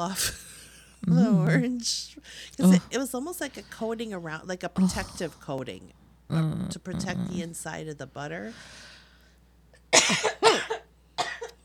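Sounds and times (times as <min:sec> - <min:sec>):
speech: 0:00.0 - 0:00.4, 0:01.0 - 0:08.9, 0:10.1 - 0:10.8
person coughing harshly into an elbow: 0:09.9 - 0:11.6.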